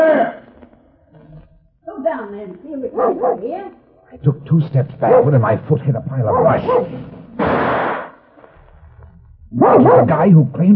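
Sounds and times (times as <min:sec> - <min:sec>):
speech: 0:02.1 - 0:07.2, 0:09.5 - 0:10.7
gunshot: 0:07.3 - 0:08.2.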